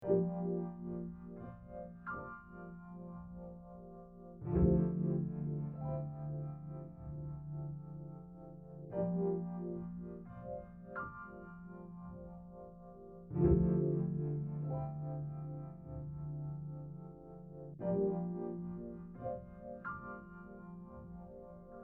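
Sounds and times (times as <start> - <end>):
piano chords: 0.0 - 21.8.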